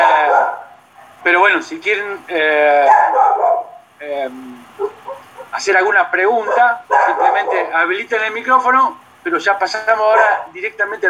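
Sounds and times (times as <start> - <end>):
dogs barking and yelping: 0.0 - 1.5, 2.7 - 4.0, 4.6 - 7.9, 10.0 - 10.6
speech: 1.3 - 11.0.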